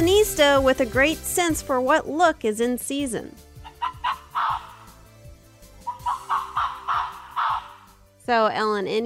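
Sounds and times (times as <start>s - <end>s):
speech: 0.3s - 3.5s, 8.3s - 9.0s
Arctic fox harsh hoarse yelping barks: 3.6s - 5.0s, 5.8s - 8.0s.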